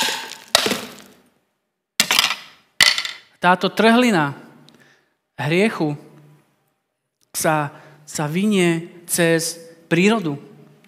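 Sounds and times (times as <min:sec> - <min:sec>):
ceramic plate shattering: 0:00.0 - 0:01.2
speech: 0:03.4 - 0:04.4, 0:05.4 - 0:06.0, 0:07.4 - 0:10.5.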